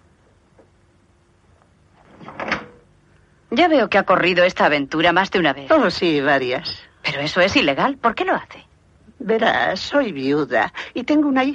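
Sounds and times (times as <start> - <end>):
door being shut and locked with a key: 2.1 - 2.8
speech: 3.5 - 11.5.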